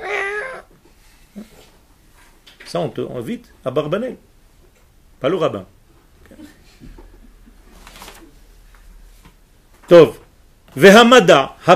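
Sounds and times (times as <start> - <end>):
person imitating a cat meow: 0.0 - 0.7
speech: 2.7 - 4.3, 5.2 - 6.9, 9.9 - 10.2, 10.8 - 11.7.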